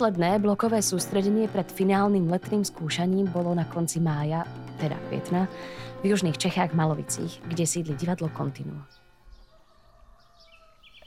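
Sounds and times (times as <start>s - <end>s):
speech: 0.0s - 9.0s
birds chirping and singing outdoors in Malovice South Bohemia Czech Republic: 5.1s - 11.0s.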